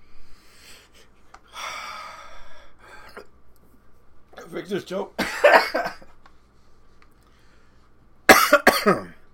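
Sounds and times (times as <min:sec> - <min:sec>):
speech: 0:04.5 - 0:06.1, 0:08.8 - 0:09.1
person coughing after choking on something: 0:05.2 - 0:06.1, 0:08.3 - 0:09.2.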